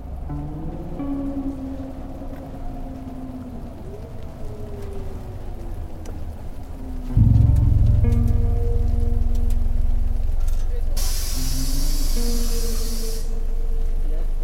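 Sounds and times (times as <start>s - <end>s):
steady rain falling: 0.0s - 14.4s
loud low idling engine: 7.2s - 13.8s
spray-like hissing: 11.0s - 13.4s.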